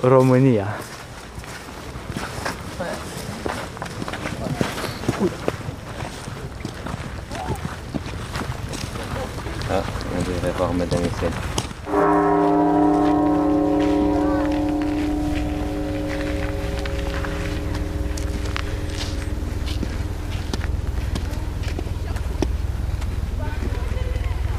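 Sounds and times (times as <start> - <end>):
speech: 0.0 - 1.0, 5.2 - 5.4, 9.7 - 12.1
footsteps: 0.2 - 24.4
bell struck once, ringing: 11.9 - 23.4.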